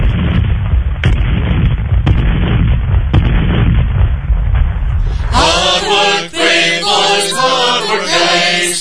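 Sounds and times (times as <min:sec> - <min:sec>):
cannon fire: 0:00.0 - 0:05.6
constant rumbling din: 0:00.0 - 0:08.6.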